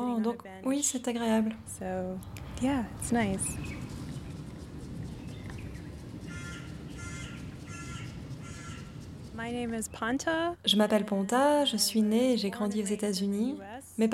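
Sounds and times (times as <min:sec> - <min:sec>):
steady low rumble of traffic in Tehran: 0:00.0 - 0:14.1
speech: 0:00.2 - 0:03.9, 0:09.4 - 0:14.1
birds calling in a city park in Tehran: 0:02.2 - 0:10.2
crows cawing harshly in a city park in Tehran: 0:06.2 - 0:09.1.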